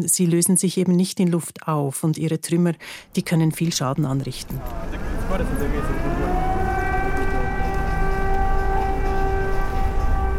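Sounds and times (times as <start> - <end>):
speech: 0.0 - 6.0
low rumble of traffic and street noise: 3.1 - 10.3
air raid sirens wailing over a city street: 4.0 - 10.3.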